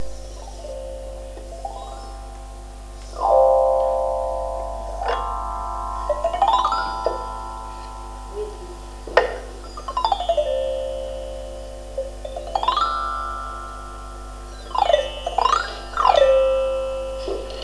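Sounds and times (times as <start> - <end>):
xylophone: 3.2 - 8.9, 9.8 - 17.6.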